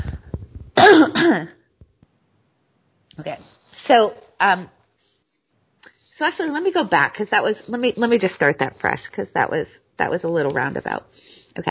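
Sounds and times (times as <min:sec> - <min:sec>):
person coughing: 0:00.8 - 0:01.6
speech: 0:01.2 - 0:01.6, 0:03.2 - 0:04.8, 0:06.2 - 0:11.6.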